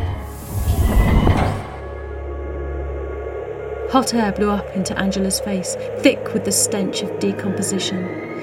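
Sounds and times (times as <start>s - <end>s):
heavy chamber separation door sliding open with pneumatic hiss: 0.2s - 2.1s
speech: 3.9s - 8.3s.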